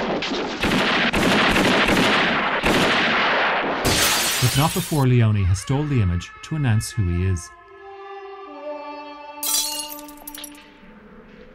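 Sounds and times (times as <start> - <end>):
gunshots from a western film scene: 0.0 - 5.0
speech: 4.6 - 7.6.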